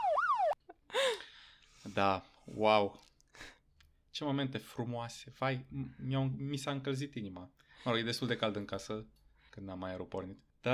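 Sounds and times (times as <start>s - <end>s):
police siren sound effect: 0.0s - 0.6s
speech: 1.9s - 3.6s, 4.2s - 10.7s.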